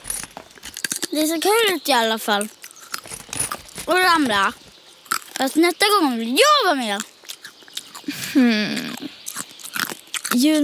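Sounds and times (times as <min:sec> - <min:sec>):
crunchy chewing of snacks: 0:00.0 - 0:10.6
speech: 0:01.1 - 0:02.6, 0:03.9 - 0:04.6, 0:05.4 - 0:07.1, 0:08.4 - 0:08.8, 0:10.4 - 0:10.6.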